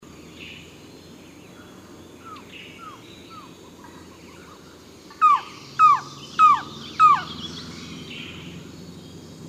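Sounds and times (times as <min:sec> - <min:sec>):
faint background hiss: 0:00.0 - 0:09.4
mountain trogon calling downslurred hoarse notes: 0:02.2 - 0:08.5.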